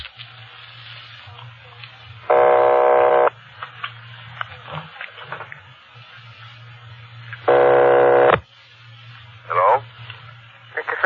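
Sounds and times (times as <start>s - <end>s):
faint telephone line noise: 0.1s - 4.4s, 5.7s - 11.0s
low hum: 2.2s - 3.4s, 6.5s - 10.6s
telephone ringback tone: 2.3s - 3.3s, 7.5s - 8.4s.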